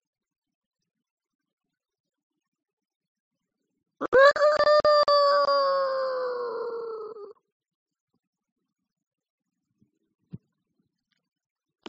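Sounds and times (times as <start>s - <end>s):
rooster crowing at daybreak: 4.0s - 7.3s.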